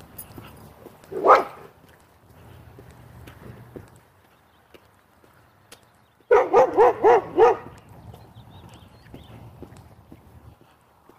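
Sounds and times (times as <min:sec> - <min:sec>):
soft outdoor rumble: 0:00.0 - 0:11.1
dog barking behind a fence: 0:01.1 - 0:01.7, 0:06.3 - 0:07.8.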